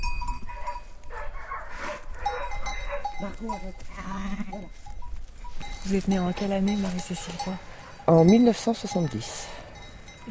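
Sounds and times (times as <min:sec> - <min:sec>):
faint cowbell clinking: 0:00.0 - 0:01.2, 0:02.2 - 0:10.2
flock of ewes and lambs bleating in a mountain pasture: 0:02.6 - 0:05.0
speech: 0:03.2 - 0:05.0, 0:05.8 - 0:09.6.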